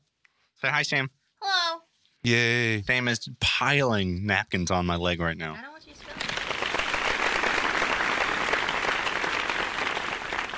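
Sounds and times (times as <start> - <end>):
speech: 0.6 - 1.2, 2.2 - 5.7
crowd applauding: 6.0 - 10.5.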